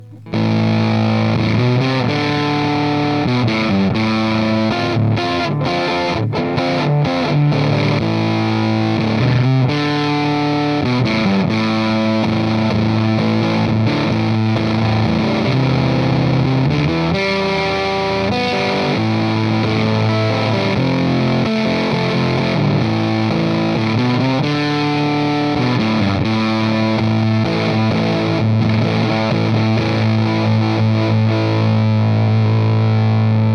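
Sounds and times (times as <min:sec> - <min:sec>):
fuzz through 6V6 EZ81 12AT7 amplifier and G12 speaker with gain nearly maxed: 0:00.0 - 0:33.5.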